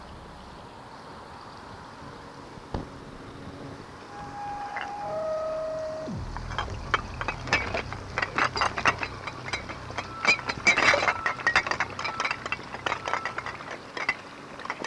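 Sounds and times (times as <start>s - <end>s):
bottles at a lake: 4.1s - 14.8s.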